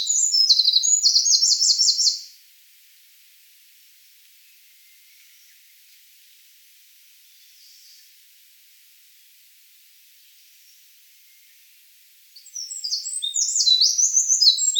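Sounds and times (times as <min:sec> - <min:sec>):
Eurasian wren Troglodytes troglodytes singing: 0:00.0 - 0:02.3, 0:12.4 - 0:14.7.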